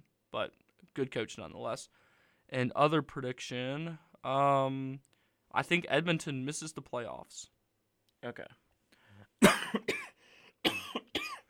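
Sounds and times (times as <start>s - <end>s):
speech: 0.3s - 7.5s, 8.2s - 8.6s
quiet breathing: 1.9s - 2.5s, 5.1s - 5.5s, 8.9s - 9.4s, 10.2s - 10.6s
harsh raspy coughs: 9.4s - 11.4s.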